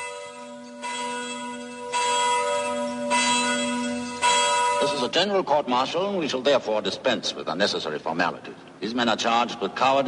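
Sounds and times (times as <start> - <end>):
church bell tolling: 0.0 - 5.4
speech: 4.9 - 10.0.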